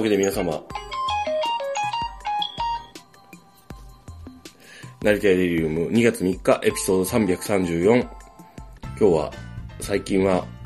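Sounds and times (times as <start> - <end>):
speech: 0.0 - 0.8, 5.0 - 8.2, 9.0 - 10.6
phone ringtone with electronic synth melody and bass beats: 0.2 - 3.6.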